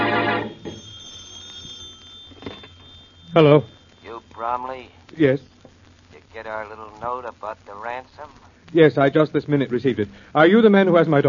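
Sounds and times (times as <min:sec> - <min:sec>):
telephone bell ringing in a home: 0:00.0 - 0:04.4
steady high hum: 0:00.0 - 0:11.2
speech: 0:03.3 - 0:03.8, 0:04.4 - 0:05.5, 0:06.4 - 0:11.2.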